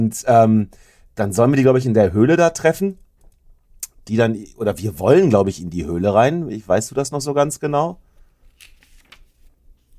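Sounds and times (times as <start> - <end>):
speech: 0.0 - 3.0, 4.0 - 8.0
soft crinkly paper rustling: 8.1 - 9.9.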